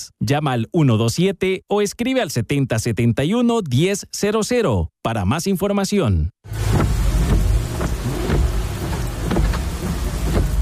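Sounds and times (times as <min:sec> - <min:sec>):
speech: 0:00.0 - 0:07.0
sharp drip-like spikes: 0:06.5 - 0:10.6
steady heavy rain: 0:06.5 - 0:10.6.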